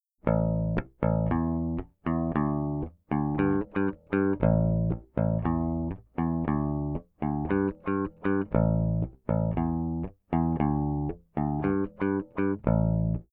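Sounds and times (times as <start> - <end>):
bass played with a pick, low and high: 0.2 - 13.3.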